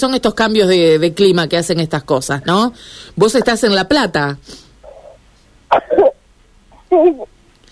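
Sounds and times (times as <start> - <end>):
speech: 0.0 - 4.6, 5.7 - 6.2, 6.9 - 7.4
child coughing: 5.7 - 6.2.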